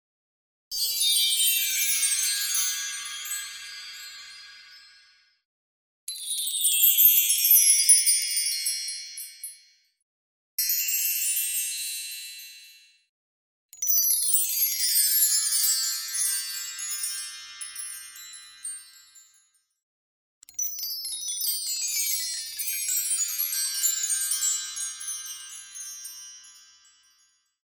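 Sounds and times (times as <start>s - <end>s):
wind chimes transition: 0.8s - 5.4s, 6.1s - 9.8s, 10.6s - 12.9s, 13.8s - 19.7s, 20.4s - 27.6s.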